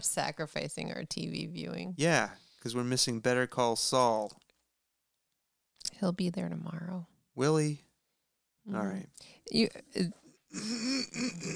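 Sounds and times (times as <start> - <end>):
speech: 0.0 - 4.4, 5.9 - 7.9, 8.7 - 11.5
person clearing throat into a microphone: 10.0 - 11.5.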